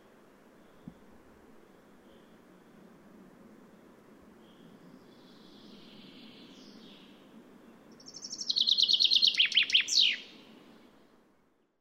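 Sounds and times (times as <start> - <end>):
steady hiss: 0.0 - 11.6
common chaffinch Fringilla coelebs song: 4.5 - 11.5.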